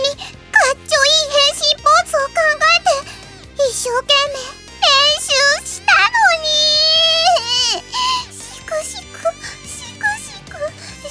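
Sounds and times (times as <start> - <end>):
light musical backing: 0.0 - 11.0
person sobbing and wailing in theatrical fake crying: 0.0 - 11.0.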